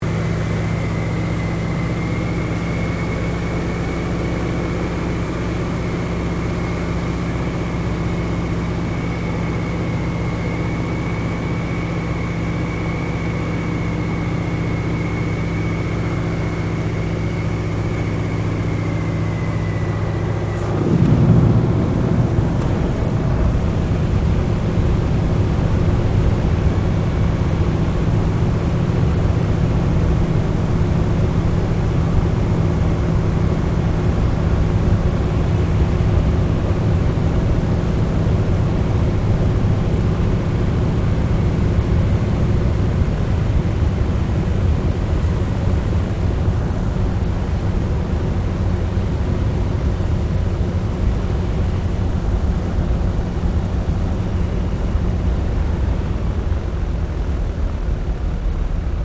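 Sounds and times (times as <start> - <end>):
AT-6D Harvard Mk III training aircraft landing, heard from the interior: 0.0 - 59.0.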